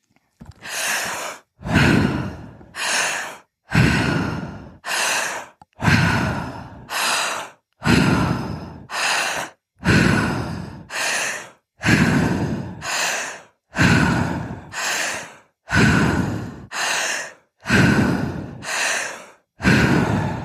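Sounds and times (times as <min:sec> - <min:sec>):
deep breaths with long exhales during a breathwork exercise: 0:00.4 - 0:20.4.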